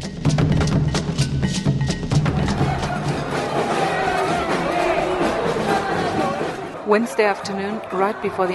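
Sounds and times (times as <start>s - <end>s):
sharp rhythmic hits: 0.0s - 8.5s
large marching crowd chanting: 2.2s - 8.5s
speech: 6.9s - 8.5s.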